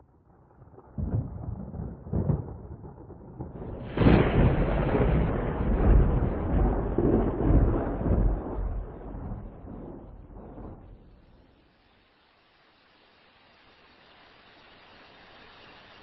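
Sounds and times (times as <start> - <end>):
low rolling thunder: 0.3 - 11.5.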